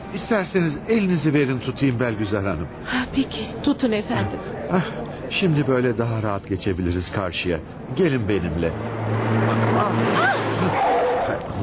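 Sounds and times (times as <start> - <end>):
voices murmuring: 0.0 - 11.6
speech: 0.1 - 11.6
car engine hum: 7.5 - 11.6
car tire squeals skidding past pedestrians: 8.8 - 11.6.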